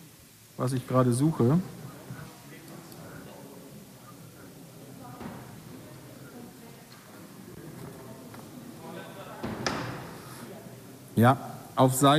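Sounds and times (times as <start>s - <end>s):
low murmur of people talking quietly: 0.0s - 12.1s
speech: 0.6s - 1.8s, 11.2s - 12.1s
door thudding shut as a man leaves a meeting room: 9.4s - 10.1s.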